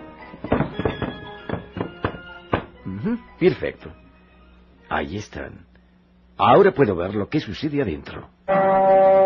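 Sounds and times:
wooden stool being shifted into place by a door: 0:00.3 - 0:02.8
speech: 0:03.0 - 0:04.0, 0:04.9 - 0:05.7, 0:06.4 - 0:09.1.

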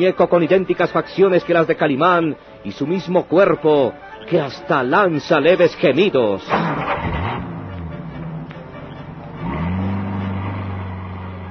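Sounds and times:
speech: 0:00.0 - 0:07.2
car engine revving and accelerating while driving away: 0:06.5 - 0:11.5.

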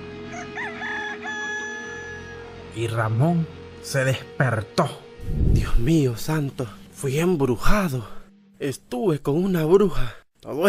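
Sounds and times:
rooster crowing in the distance: 0:00.2 - 0:02.6
speech: 0:02.8 - 0:10.6.

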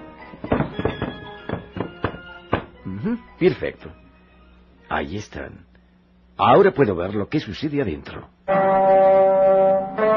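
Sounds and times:
wooden stool pulled up to a door and stepped onto: 0:00.3 - 0:02.8
speech: 0:03.0 - 0:04.0, 0:04.9 - 0:05.7, 0:06.4 - 0:09.2.

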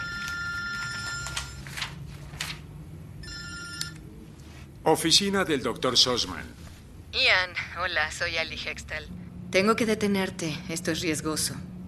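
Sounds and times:
telephone ringing in an office: 0:00.0 - 0:01.8, 0:03.2 - 0:04.1
rustling and shuffling of papers as a man searches: 0:00.0 - 0:02.7
speech: 0:04.8 - 0:06.6, 0:07.2 - 0:11.7.

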